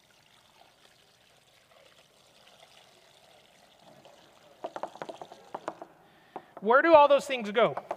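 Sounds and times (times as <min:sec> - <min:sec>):
water pouring until it overflows: 0:00.0 - 0:05.9
speech: 0:06.6 - 0:07.9.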